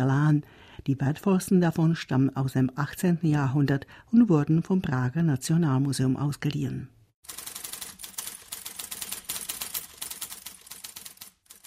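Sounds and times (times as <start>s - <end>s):
speech: 0.0s - 7.4s
typewriter keys clacking: 7.2s - 11.6s.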